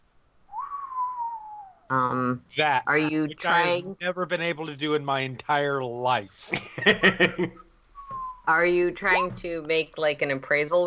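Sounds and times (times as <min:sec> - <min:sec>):
long low whistle: 0:00.5 - 0:01.9, 0:08.0 - 0:08.5
speech: 0:01.9 - 0:07.6, 0:08.5 - 0:10.8
laughter: 0:06.4 - 0:07.6.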